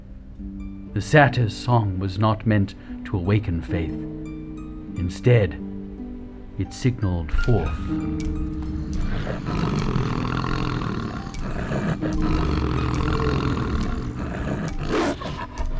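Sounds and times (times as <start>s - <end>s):
speech: 0.4s - 4.4s, 5.0s - 5.6s, 6.6s - 10.4s, 12.0s - 13.1s
enormous scarred wolf growling deeply in a crypt: 8.4s - 15.7s.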